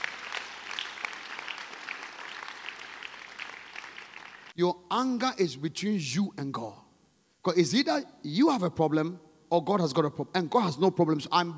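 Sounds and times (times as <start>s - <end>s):
crowd clapping: 0.0s - 4.6s
speech: 4.6s - 6.8s, 7.4s - 11.5s.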